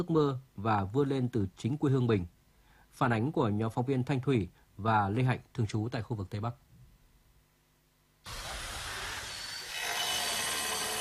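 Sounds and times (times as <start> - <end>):
speech: 0.0 - 2.4, 3.0 - 6.6
concrete drill roaring at a school construction site: 8.3 - 10.9
tile cutter grinding at a school construction site: 8.3 - 10.9.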